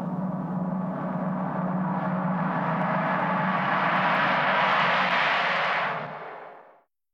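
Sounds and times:
science fiction meteor effect: 0:00.1 - 0:06.8.

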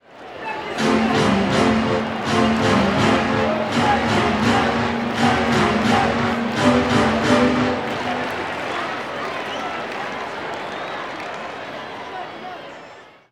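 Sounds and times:
crowd clapping: 0:00.1 - 0:13.0
baseball organ playing: 0:00.8 - 0:08.7.

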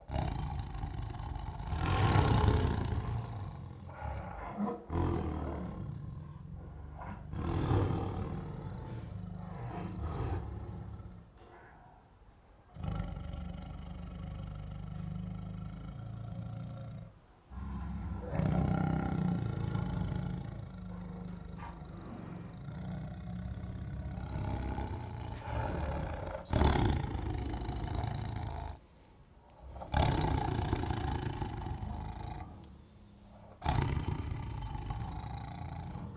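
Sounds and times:
tigers growling annoyed and stalking: 0:00.0 - 0:12.0, 0:12.7 - 0:28.9, 0:29.5 - 0:36.1.

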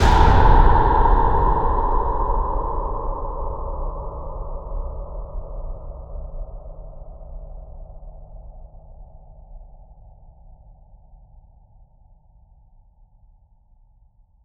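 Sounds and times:
cinematic metal impacts: 0:00.0 - 0:02.5.

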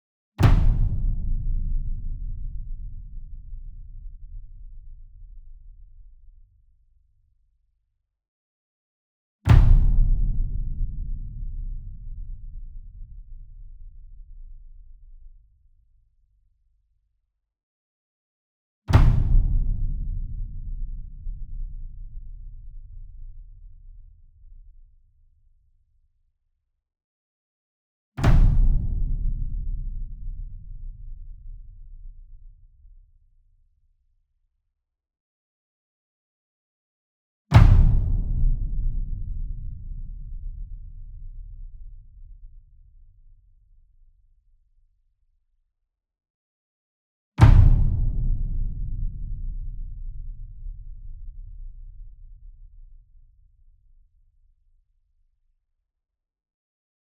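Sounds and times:
66 inch Verdi drum flam with hard beater: 0:00.4 - 0:04.4, 0:09.5 - 0:13.1, 0:18.9 - 0:22.8, 0:28.2 - 0:31.6, 0:37.5 - 0:41.7, 0:47.4 - 0:51.9.

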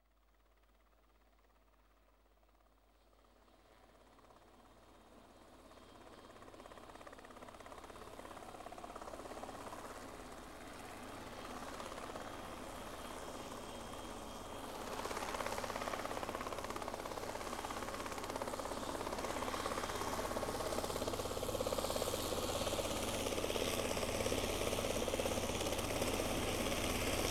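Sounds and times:
helicopter landing: 0:05.6 - 0:27.2.

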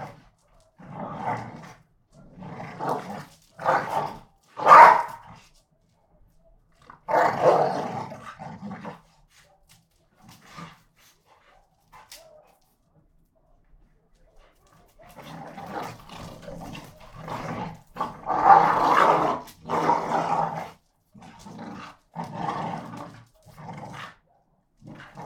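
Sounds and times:
two pit bulls growling and snarling while fighting: 0:00.0 - 0:05.4, 0:06.8 - 0:09.3, 0:14.8 - 0:25.2.

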